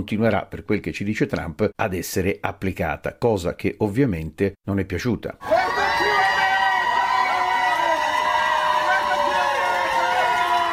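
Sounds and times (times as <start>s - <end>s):
speech: 0.0s - 5.6s
large crowd in Dallas shouting and cheering welcoming released immigrants: 5.4s - 10.7s.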